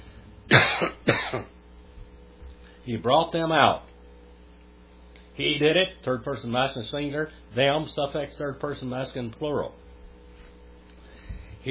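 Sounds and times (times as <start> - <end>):
harsh coughs with a rasping tail: 0.5 - 1.6
speech: 2.9 - 3.9, 5.4 - 9.8.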